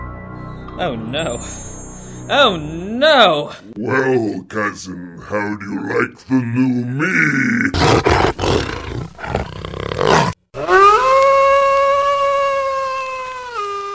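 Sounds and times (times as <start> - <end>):
speech: 0.8 - 9.0
huge wolf creature roaring gutturally: 6.4 - 11.2
huge wolf creature howl-like cry: 6.8 - 13.5.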